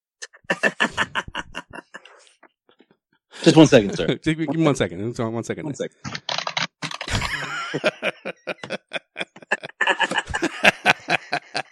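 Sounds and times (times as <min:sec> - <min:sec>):
laughter: 0:00.3 - 0:02.4, 0:03.4 - 0:04.8, 0:07.1 - 0:11.7
speech: 0:03.4 - 0:06.1, 0:07.7 - 0:07.9
loud typing on computer keyboard: 0:06.1 - 0:07.5.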